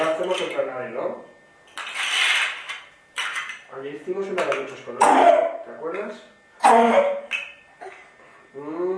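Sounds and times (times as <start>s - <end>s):
speech: 0.2s - 1.3s, 3.8s - 7.2s, 8.5s - 8.9s
harsh cough: 5.0s - 5.6s, 6.6s - 7.3s.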